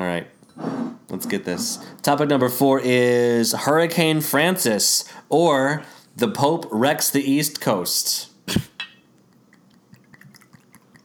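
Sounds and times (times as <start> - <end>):
speech: 1.2 - 8.7
bright glass clinks: 8.8 - 9.1
soft scattered glassware taps: 8.8 - 9.1
light splashing as shots are poured: 8.8 - 11.0.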